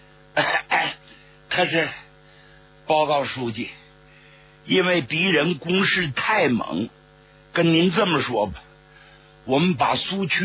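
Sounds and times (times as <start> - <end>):
man clearing throat: 0.3 - 1.2
man imitating coughing: 0.3 - 1.2
speech: 1.6 - 2.0, 2.9 - 3.8, 4.7 - 7.0, 7.6 - 8.6, 9.5 - 10.4.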